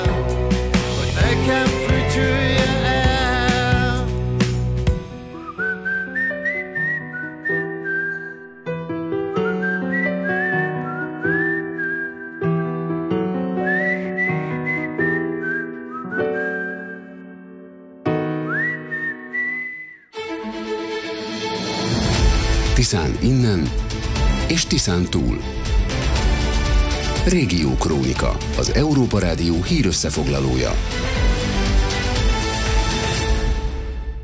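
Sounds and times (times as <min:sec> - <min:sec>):
soft musical accompaniment: 0:00.0 - 0:34.2
person whistling a lilting melody with sliding notes: 0:05.3 - 0:08.6, 0:09.3 - 0:12.6, 0:13.6 - 0:17.5, 0:18.4 - 0:20.1
speech: 0:24.5 - 0:25.6, 0:27.2 - 0:31.1.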